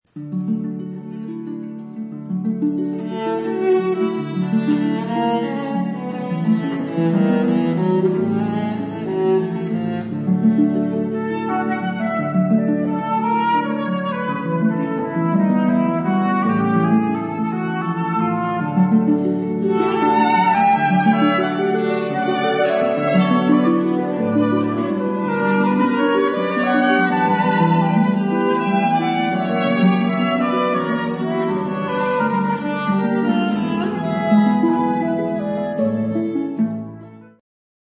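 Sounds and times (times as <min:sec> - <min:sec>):
harp: 0:00.1 - 0:37.4
viola: 0:00.2 - 0:37.4
flute: 0:10.6 - 0:37.4.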